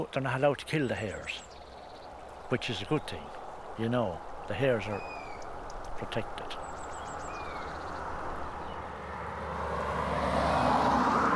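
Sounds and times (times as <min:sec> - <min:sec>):
speech: 0:00.0 - 0:01.5, 0:02.5 - 0:05.2, 0:06.0 - 0:06.7
car engine and road rumble driving by: 0:07.0 - 0:11.3.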